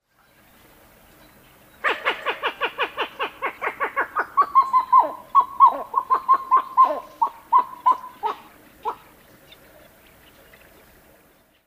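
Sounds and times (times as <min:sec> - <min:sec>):
Pied-billed Grebe Podilymbus podiceps calling: 0:01.8 - 0:10.4.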